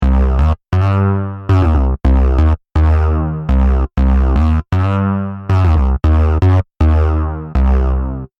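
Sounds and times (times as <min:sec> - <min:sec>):
eight-bit music: 0:00.0 - 0:08.3.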